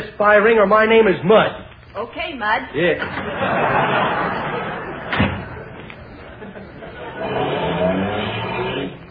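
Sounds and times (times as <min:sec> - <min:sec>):
speech: 0:00.2 - 0:04.4
laughter: 0:03.0 - 0:07.8
car door slam: 0:05.1 - 0:05.5.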